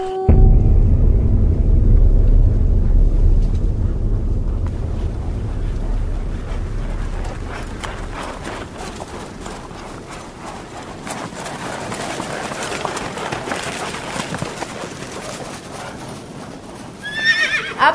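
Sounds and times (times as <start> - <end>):
dense rough noise: 0.3 - 11.1
hooves clip-clopping: 8.2 - 17.8
horse whinnying with a high wavering neigh: 17.0 - 17.8.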